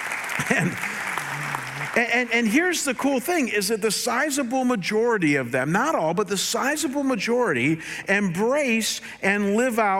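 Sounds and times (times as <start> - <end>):
crowd clapping: 0.0 - 2.7
speech: 0.5 - 0.9, 1.9 - 9.9.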